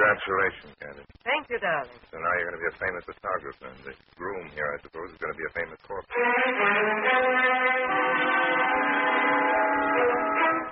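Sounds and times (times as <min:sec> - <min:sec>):
speech: 0:00.0 - 0:08.7
train at a station letting out a long loud horn blast: 0:06.2 - 0:10.7.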